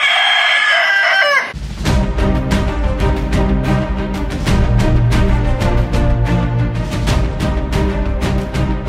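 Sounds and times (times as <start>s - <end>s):
rooster crowing: 0.0s - 1.6s
upbeat music with a steady driving beat: 1.6s - 8.8s.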